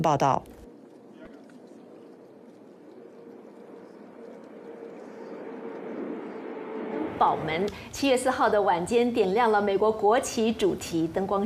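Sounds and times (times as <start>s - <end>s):
speech: 0.0s - 0.5s, 7.2s - 11.4s
aircraft engine drone passing overhead above New York Harbor: 0.7s - 8.9s.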